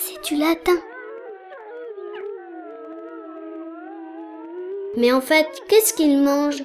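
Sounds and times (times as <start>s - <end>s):
wolf howling: 0.0s - 5.7s
speech: 0.2s - 0.9s, 5.0s - 6.6s.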